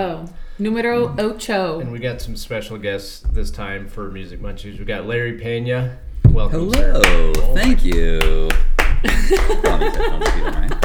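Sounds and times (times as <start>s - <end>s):
speech: 0.0s - 8.7s, 9.3s - 10.8s
loud applause of hands clapping: 6.6s - 10.8s
voices laughing: 8.8s - 10.8s.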